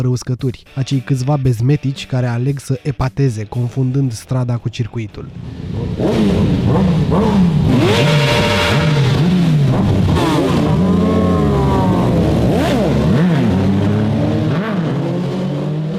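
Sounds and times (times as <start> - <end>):
speech: 0.0 - 9.0
motorcycle engine revving as the throttle is blipped: 5.3 - 15.9.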